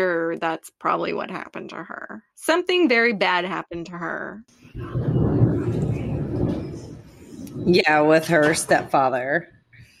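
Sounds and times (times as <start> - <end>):
speech: 0.0 - 5.7, 7.6 - 9.6
thunder rumbling: 4.7 - 9.2.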